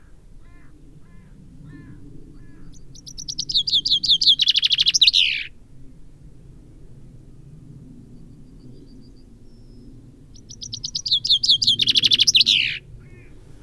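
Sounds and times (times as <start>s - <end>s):
Fringilla coelebs common chaffinch song: 2.7s - 5.5s, 9.6s - 13.6s.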